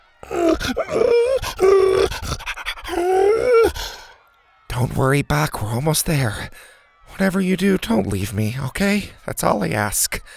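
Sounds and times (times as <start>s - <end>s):
speech: 0.2s - 1.2s, 5.0s - 10.3s
dog whining in anticipation at a tournament obstacle course: 0.2s - 4.0s.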